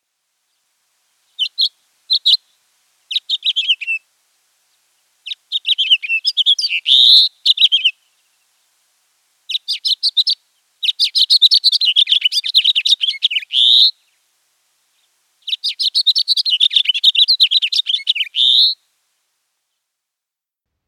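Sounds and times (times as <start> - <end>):
house finch singing with buzzy rising zree note: 1.4 - 2.4, 3.1 - 4.0, 5.2 - 8.0, 9.5 - 13.9, 15.4 - 18.8.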